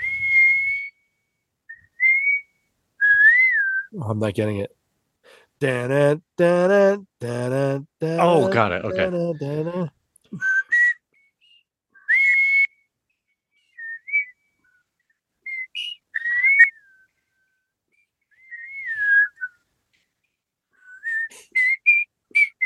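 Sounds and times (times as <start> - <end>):
person whistling a theme song: 0.0 - 4.0, 10.3 - 12.9, 13.6 - 19.6, 20.8 - 22.6
speech: 3.9 - 10.5.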